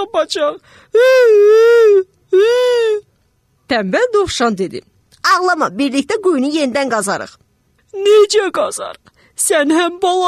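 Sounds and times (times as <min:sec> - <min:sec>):
speech: 0:00.2 - 0:02.1, 0:03.7 - 0:10.2
human voice imitating elephant crying loudly: 0:01.0 - 0:03.0.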